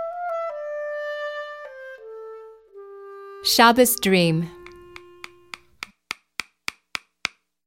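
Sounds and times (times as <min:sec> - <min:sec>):
speech: 0:03.5 - 0:04.6
cobbler's hammer tapping new soles onto shoes: 0:04.6 - 0:07.5.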